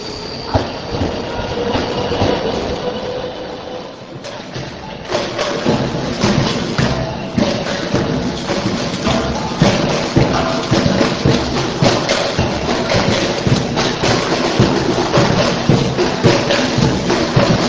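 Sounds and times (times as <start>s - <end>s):
faint metallic squeal of rolling train cars: 0.0s - 5.0s
train rumbling along rails into a station: 0.0s - 17.6s.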